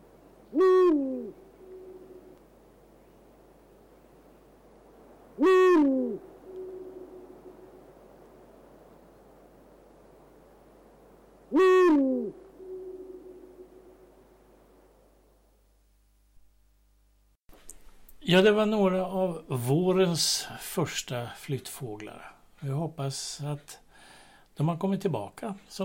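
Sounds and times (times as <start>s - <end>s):
Eurasian eagle-owl hooting: 0.0s - 2.4s, 5.2s - 9.4s, 11.4s - 14.9s
quiet steady hiss: 0.0s - 25.8s
speech: 18.3s - 23.8s, 24.6s - 25.8s.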